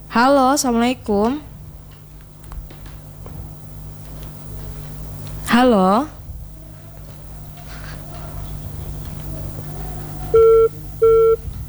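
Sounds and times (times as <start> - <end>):
faint low hum: 0.0 - 11.6
speech: 0.2 - 1.5, 5.6 - 6.2
phone call disconnected tone beeping: 9.3 - 11.6.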